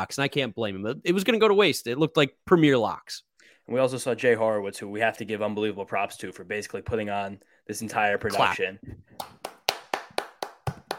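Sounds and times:
speech: 0.0 - 9.4
single pair of hands clapping: 9.1 - 10.9.

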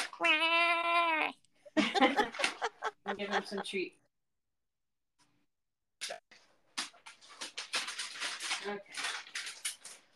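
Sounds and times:
cat meowing: 0.1 - 1.4
laughter: 1.7 - 3.8
speech: 3.1 - 4.0, 8.6 - 9.0.

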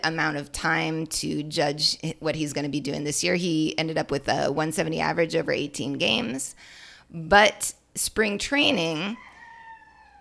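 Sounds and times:
speech: 0.0 - 9.3
rooster crowing: 9.2 - 10.2.

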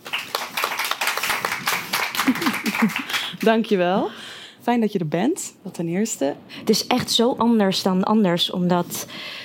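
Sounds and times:
audience applauding at a live talk event: 0.0 - 3.5
laughter: 2.1 - 3.2
speech: 2.3 - 9.4.

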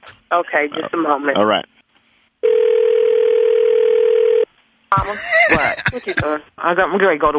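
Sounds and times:
speech: 0.3 - 1.7, 4.9 - 7.3
telephone ringback tone: 2.4 - 4.5
laughter: 5.0 - 6.3.

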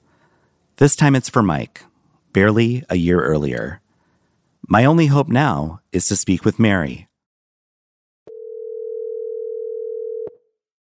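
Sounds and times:
speech: 0.8 - 3.8, 4.6 - 7.1
telephone ringing on an outgoing call: 8.3 - 10.5.

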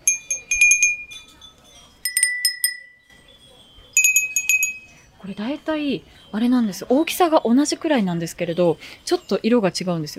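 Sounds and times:
faint murmur: 0.0 - 10.1
mouth-blown glass wind chimes with daruma pattern tinkling: 0.0 - 10.1
speech: 5.2 - 10.1.

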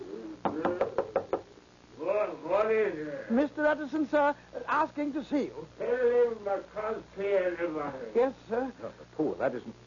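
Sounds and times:
knocking on a door: 0.4 - 1.5
speech: 2.3 - 9.8.

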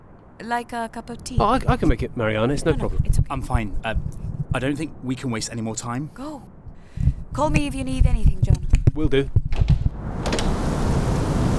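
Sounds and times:
deep low thunder rumbles: 0.0 - 11.5
speech: 0.4 - 6.6, 7.4 - 9.4
heavy rain pouring: 10.0 - 11.5.

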